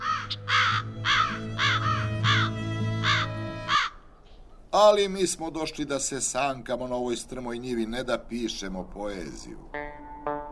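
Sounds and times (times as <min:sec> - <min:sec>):
crows cawing: 0:00.0 - 0:04.1
speech: 0:04.8 - 0:09.8.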